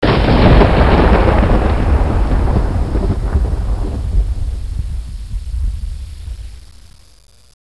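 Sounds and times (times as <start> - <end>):
low thunder: 0.0 - 7.4.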